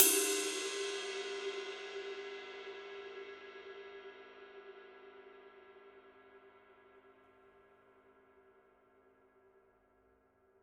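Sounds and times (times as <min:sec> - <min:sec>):
22-inch ride cymbal struck on body: 0:00.0 - 0:04.2.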